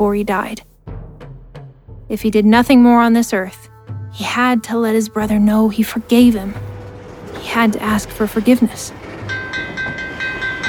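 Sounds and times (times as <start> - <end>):
speech: 0.0 - 0.7, 2.1 - 6.7, 7.4 - 9.0
rail cars rumbling past a crossing: 4.6 - 10.6
wheels clacking over track joints: 6.1 - 10.6.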